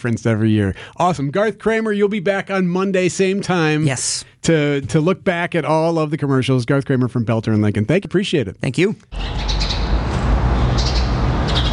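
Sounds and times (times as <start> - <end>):
speech: 0.0 - 9.6
birds chirping outdoors in the morning: 9.1 - 11.7
steady outdoor rumble: 9.2 - 11.7.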